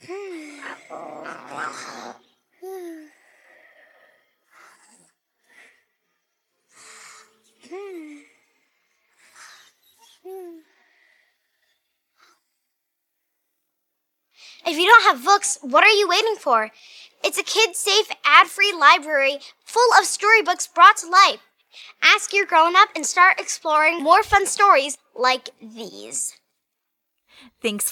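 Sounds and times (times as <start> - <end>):
tiger growling and snarling: 0.5 - 2.2
speech: 0.9 - 2.2, 14.7 - 26.4, 27.4 - 27.8.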